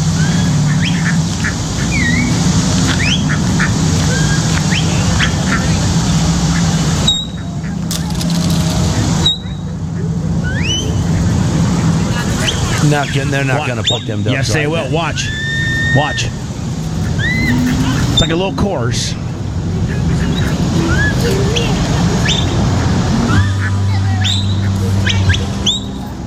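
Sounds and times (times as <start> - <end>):
ducks quacking: 0.2 - 8.1, 8.7 - 15.3, 15.9 - 26.0
voices: 7.6 - 15.3, 17.5 - 26.2
speech: 12.9 - 16.4, 18.2 - 20.1.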